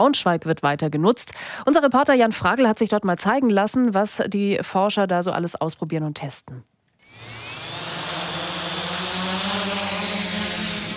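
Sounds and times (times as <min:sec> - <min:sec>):
speech: 0:00.0 - 0:07.4
two drones taking off inside a 15-meter-high cage: 0:07.0 - 0:10.9.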